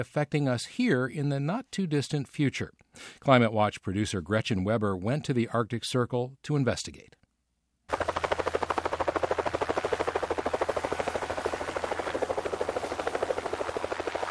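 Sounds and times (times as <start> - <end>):
speech: 0.0 - 7.2
helicopter rotor chop over open tundra on the north slope of the Brooks Range: 7.9 - 14.3.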